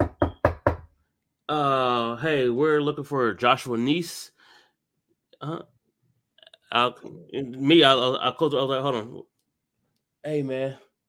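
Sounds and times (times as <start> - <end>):
knocking on a door: 0.0 - 0.9
speech: 1.5 - 4.4, 5.4 - 5.7, 6.7 - 9.3, 10.2 - 10.8.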